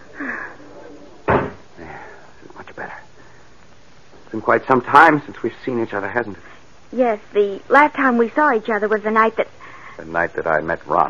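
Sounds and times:
people talking quietly: 0:00.0 - 0:03.2
door opening onto a terrace with a solid clunk: 0:01.3 - 0:01.6
speech: 0:04.3 - 0:11.0.

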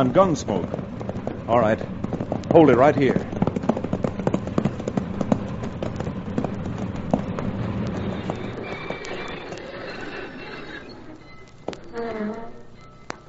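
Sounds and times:
speech: 0:00.0 - 0:00.8, 0:01.5 - 0:03.3
low rumble: 0:00.0 - 0:08.7
horse hooves clip-clopping: 0:00.0 - 0:12.4.

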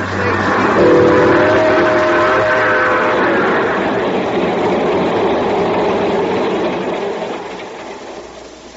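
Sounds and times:
steam train chugging as it pulls away: 0:00.0 - 0:08.7
sustained steam train whistle: 0:00.8 - 0:04.9.

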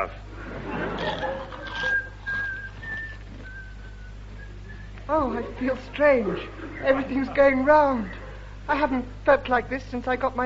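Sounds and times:
speech: 0:00.0 - 0:00.3, 0:01.0 - 0:01.5, 0:05.1 - 0:10.4
low hum: 0:00.0 - 0:10.4
laughter: 0:00.4 - 0:02.5, 0:05.2 - 0:08.6
person whistling the national anthem: 0:01.8 - 0:05.0.

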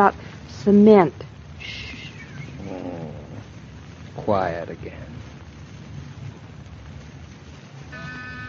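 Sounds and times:
speech: 0:00.0 - 0:01.9, 0:04.2 - 0:05.1
cat purring loudly: 0:01.6 - 0:07.2.

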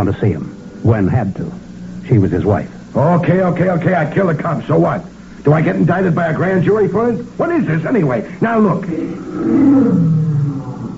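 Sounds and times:
speech: 0:00.0 - 0:10.2
lion roaring: 0:09.0 - 0:10.9.

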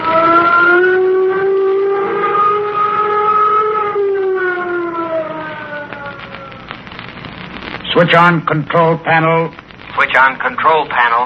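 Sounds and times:
flight warning siren wailing at a jet control tower: 0:00.0 - 0:06.8
speech: 0:08.0 - 0:11.2.

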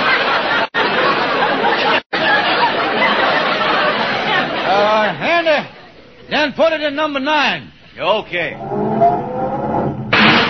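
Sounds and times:
laughter: 0:00.0 - 0:06.0
speech: 0:06.3 - 0:08.8
car engine revving while parking: 0:08.5 - 0:10.2.

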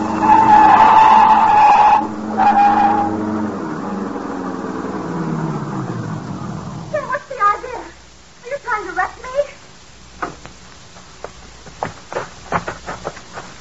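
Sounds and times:
car tires screeching in a skid: 0:00.0 - 0:07.7
car engine groaning and winding down: 0:00.0 - 0:13.6
crunching thuds of a car running into a ditch: 0:10.0 - 0:13.6.

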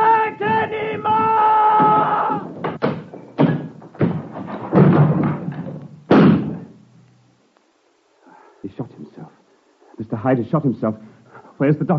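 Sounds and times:
door being smashed in heavy blows: 0:00.3 - 0:06.7
speech: 0:10.3 - 0:11.9.

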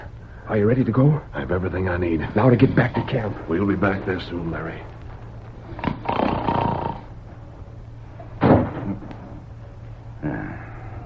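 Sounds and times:
speech: 0:00.5 - 0:05.0
rumbling clatter: 0:01.4 - 0:11.0
door slamming shut with a heavy bang: 0:08.4 - 0:09.4.

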